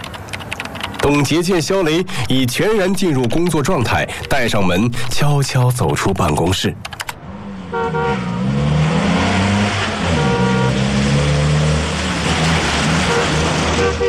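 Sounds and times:
road noise: 0.0 - 14.0
speech: 1.0 - 7.0
car engine droning while driven: 7.0 - 14.0
car horn toots: 7.7 - 8.5, 10.0 - 11.0, 12.8 - 14.0.

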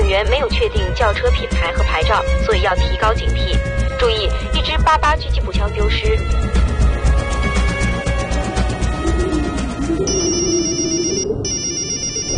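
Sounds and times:
dense rumbling background of music or ambience: 0.0 - 12.3
speech: 0.2 - 6.8
mobile phone ringing with bright electronic tone: 10.1 - 12.3.

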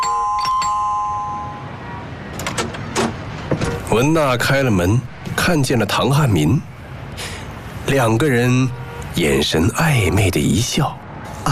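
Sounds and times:
doorbell ringing a two-tone ding-dong: 0.0 - 1.7
speech: 3.9 - 7.3, 7.9 - 11.0.

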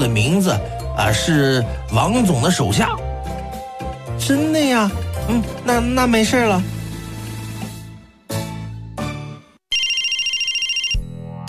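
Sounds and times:
speech: 0.0 - 3.0, 4.2 - 6.8
mobile phone ringtone: 9.7 - 11.1.

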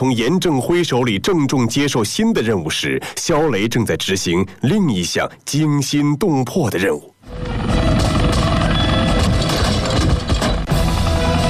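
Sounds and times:
speech: 0.0 - 8.0
armed police helicopter hovering above a modern high-rise building: 7.2 - 11.4.

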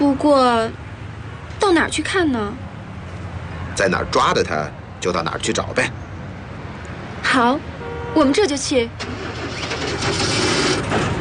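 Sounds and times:
speech: 0.1 - 0.8, 1.6 - 2.7, 3.8 - 6.0, 7.3 - 11.1
motorcycle engine starting: 9.0 - 11.1.

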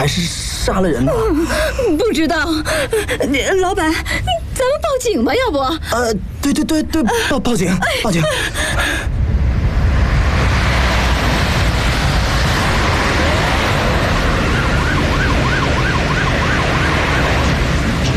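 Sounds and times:
speech: 0.0 - 9.1
loud steady rumble of traffic: 0.0 - 18.1
sirens of several police cars wailing: 11.2 - 18.1.

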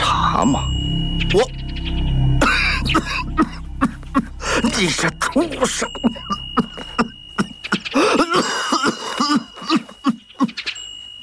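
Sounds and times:
speech: 0.4 - 1.6, 4.8 - 6.2
person acting out an angry fit of harsh coughing: 2.4 - 10.6.

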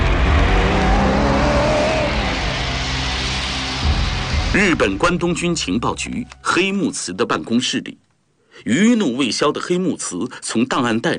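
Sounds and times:
car engine starting and driving away: 0.0 - 5.1
speech: 4.6 - 8.0, 8.6 - 11.1.

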